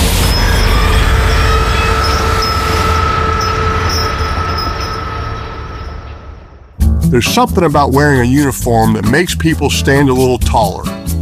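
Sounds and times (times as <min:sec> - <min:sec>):
metallic train wheel squeal: 0:00.0 - 0:06.8
phantom train rumbling through school hallways: 0:00.0 - 0:07.6
speech: 0:07.1 - 0:11.2.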